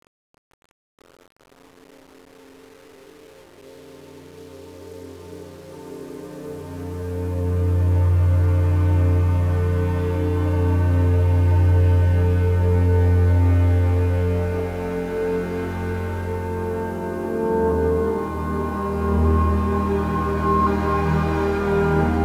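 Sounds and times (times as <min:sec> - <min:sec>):
death music: 0:04.9 - 0:22.2.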